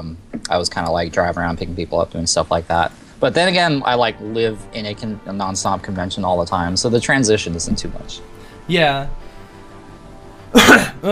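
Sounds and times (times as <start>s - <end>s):
speech: 0.0s - 9.3s, 10.5s - 11.1s
cough: 10.6s - 11.1s.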